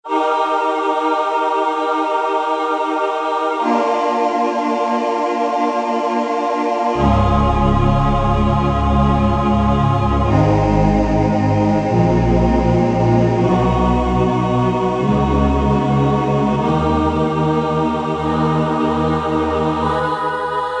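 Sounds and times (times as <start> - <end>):
Korg M1 synthesizer choir: 0.0 - 20.7.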